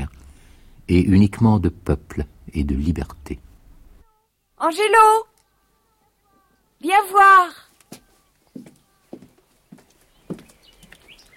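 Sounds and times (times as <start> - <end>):
speech: 0.9 - 3.5, 4.6 - 5.3, 6.8 - 7.6
horses' hooves clopping: 7.8 - 11.3.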